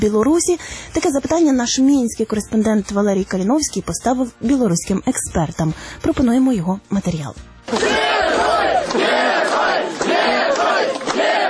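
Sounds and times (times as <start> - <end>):
speech: 0.0 - 8.0
large crowd at a bus station shouting and chanting greetings: 7.7 - 11.4.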